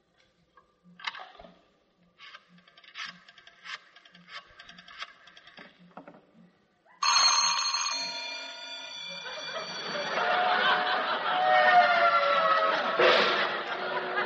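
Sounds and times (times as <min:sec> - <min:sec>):
telephone bell ringing: 0:07.0 - 0:11.2
laughter: 0:09.0 - 0:14.2.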